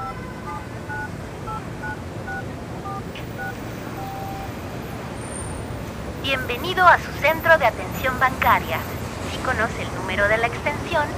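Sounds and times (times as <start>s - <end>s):
mobile phone touch-tone beeps while dialing a bank: 0.0s - 4.5s
road traffic: 0.0s - 11.1s
speech: 6.3s - 11.1s.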